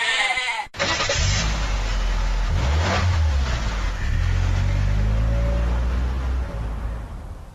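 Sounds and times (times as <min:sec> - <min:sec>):
goat bleating: 0:00.0 - 0:00.8
car engine revving: 0:00.8 - 0:07.5.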